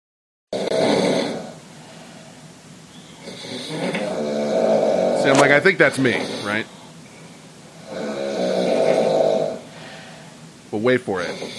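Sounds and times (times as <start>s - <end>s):
loud rasping snoring in an open-plan office: 0.6s - 1.6s, 3.2s - 6.9s, 7.8s - 10.4s, 11.2s - 11.5s
speech: 5.2s - 6.8s, 10.7s - 11.5s.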